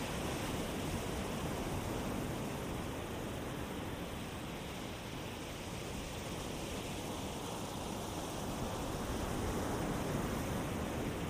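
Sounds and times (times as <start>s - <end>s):
ocean surf washing onto the shore: 0.0s - 11.2s.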